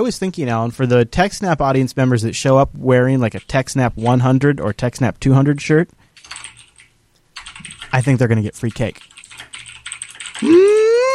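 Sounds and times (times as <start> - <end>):
speech: 0.0 - 6.5, 7.9 - 9.1, 10.4 - 10.7
typing on a computer keyboard: 3.3 - 4.2, 6.2 - 11.1.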